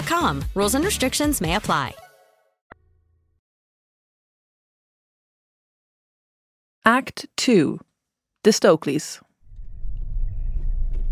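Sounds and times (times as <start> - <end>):
speech: 0.1 - 2.0, 6.9 - 9.3
engine rumble inside a moving car driving to Bishop Stortford: 9.5 - 11.1.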